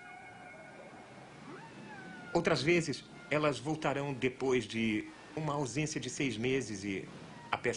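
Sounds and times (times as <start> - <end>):
humpback whale song: 0.0 - 3.7
speech: 2.3 - 7.7
steady underwater hiss: 3.8 - 7.4.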